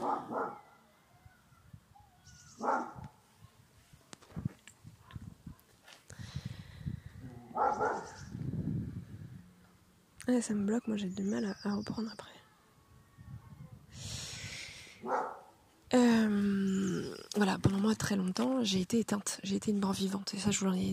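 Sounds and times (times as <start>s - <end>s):
large dog barking: 0.0s - 0.8s, 2.6s - 3.2s, 7.4s - 8.2s, 15.0s - 15.6s
speech: 10.3s - 12.4s, 15.9s - 16.8s, 17.4s - 20.9s.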